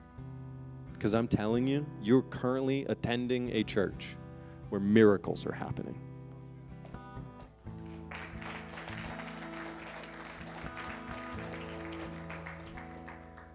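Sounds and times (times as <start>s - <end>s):
speech: 1.0s - 6.1s
large crowd applauding: 7.8s - 13.5s.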